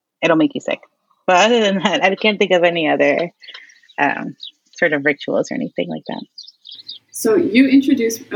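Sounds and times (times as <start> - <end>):
speech: 0.2 - 6.4, 7.2 - 8.3
high-pitched bird chirps outside: 2.8 - 7.2.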